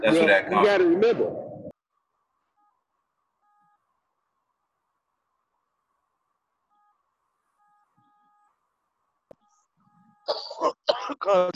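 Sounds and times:
speech: 0.0s - 1.4s, 10.3s - 11.5s
person coughing harshly: 10.3s - 11.3s.

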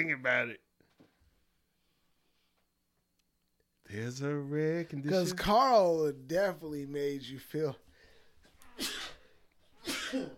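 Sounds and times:
speech: 0.0s - 0.6s, 3.9s - 7.8s, 10.1s - 10.3s
sharp breathy sneezes: 8.7s - 10.3s.

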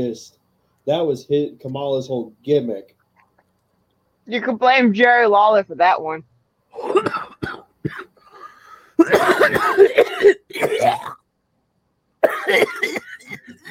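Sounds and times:
speech: 0.0s - 3.0s, 4.3s - 7.2s
heavy coughing fit with harsh rasping coughs: 6.8s - 11.2s, 12.2s - 13.6s.

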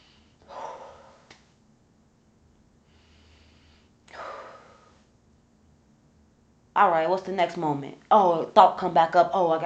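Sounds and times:
deep breathing in and out: 0.0s - 1.6s, 2.8s - 5.2s
speech: 6.8s - 9.6s.

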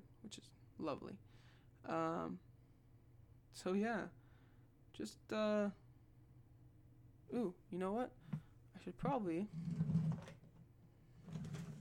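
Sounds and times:
speech: 0.3s - 2.5s, 3.5s - 4.2s, 5.0s - 5.8s, 7.3s - 10.0s
drawer sliding open: 9.5s - 10.5s, 11.2s - 11.7s.

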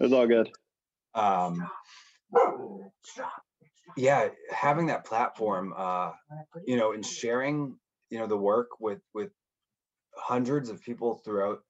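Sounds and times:
speech: 0.0s - 0.6s, 1.2s - 9.4s, 10.2s - 11.6s
dog barking: 2.3s - 2.8s.

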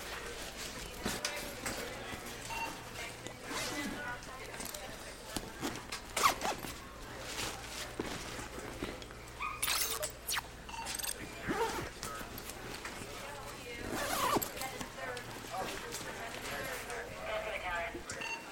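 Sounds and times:
faint voices murmuring: 0.0s - 18.5s
bag zipper pulled shut: 6.2s - 6.7s, 9.6s - 10.5s, 13.8s - 14.6s.

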